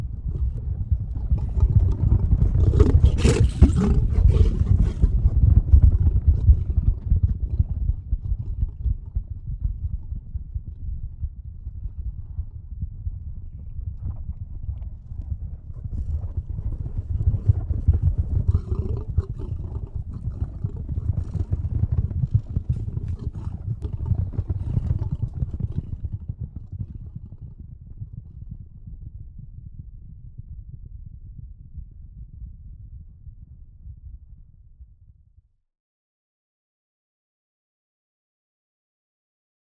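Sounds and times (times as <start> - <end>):
rhino running: 0.2 - 8.7, 15.9 - 26.3.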